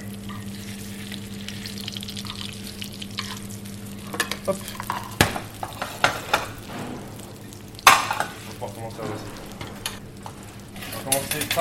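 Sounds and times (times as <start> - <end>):
pan sizzling as hot fat is spooned over food: 0.0 - 11.6
speech: 4.5 - 4.8.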